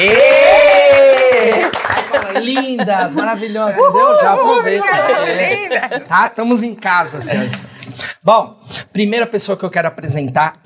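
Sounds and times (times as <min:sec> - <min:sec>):
voices whooping and cheering: 0:00.0 - 0:01.8, 0:03.7 - 0:05.7
audience applause with clapping: 0:00.0 - 0:02.8
laughter: 0:01.6 - 0:07.8
speech: 0:02.6 - 0:10.6.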